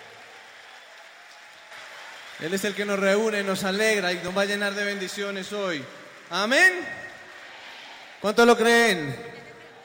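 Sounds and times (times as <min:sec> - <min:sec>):
large crowd applauding: 0:00.0 - 0:09.8
speech: 0:02.4 - 0:07.0, 0:08.2 - 0:09.4.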